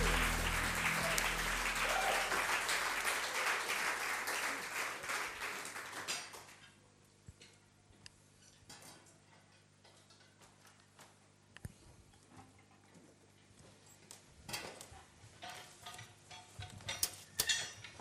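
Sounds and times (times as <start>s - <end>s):
dense audience applause as guests come on stage: 0.0s - 6.6s.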